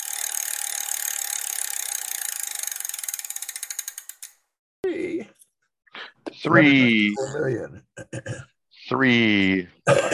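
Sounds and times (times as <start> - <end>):
prize wheel spinning with ratcheting clicks: 0.0 - 4.4
speech: 6.4 - 10.1.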